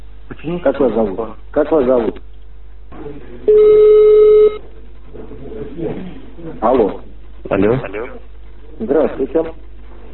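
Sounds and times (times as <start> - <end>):
speech: 0.3 - 2.3, 3.0 - 4.2, 5.8 - 10.1
steady mid-pitched telephone tone on an incoming call: 3.5 - 4.6.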